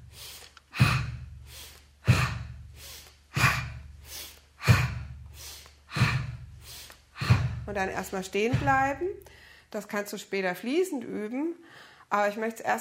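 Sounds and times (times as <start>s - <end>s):
deep breaths in through the nose and out through the mouth during a standing breathing exercise: 0.0s - 7.8s, 8.6s - 9.7s
speech: 7.7s - 12.7s.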